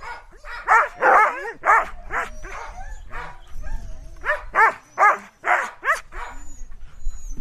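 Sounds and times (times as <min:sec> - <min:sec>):
several dogs barking and yipping: 0:00.0 - 0:03.4, 0:04.2 - 0:06.5.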